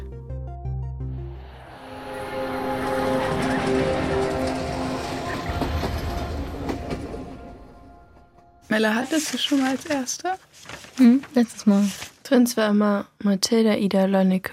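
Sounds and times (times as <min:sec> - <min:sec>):
train rumbling on rails: 0:01.4 - 0:08.6
speech: 0:08.8 - 0:14.5.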